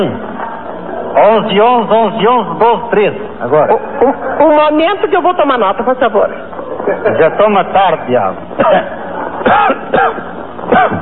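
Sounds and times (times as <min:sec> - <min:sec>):
speech: 0:00.0 - 0:00.2, 0:01.2 - 0:11.0
laughter: 0:03.6 - 0:04.7, 0:06.6 - 0:07.7
person with a persistent cough coughing: 0:08.6 - 0:11.0.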